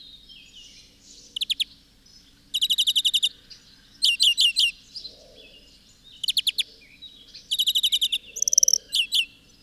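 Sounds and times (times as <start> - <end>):
European greenfinch Chloris chloris twittering calls: 0.3 - 1.8, 2.5 - 3.3, 6.0 - 6.7, 7.3 - 9.6.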